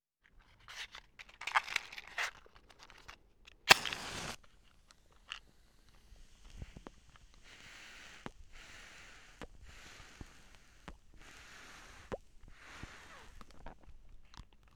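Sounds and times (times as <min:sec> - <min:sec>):
tobacco pipe: 0:00.3 - 0:14.4.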